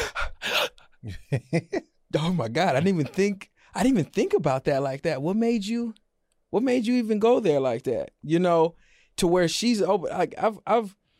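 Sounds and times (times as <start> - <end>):
person gasping: 0.0 - 1.1
speech: 1.0 - 11.0.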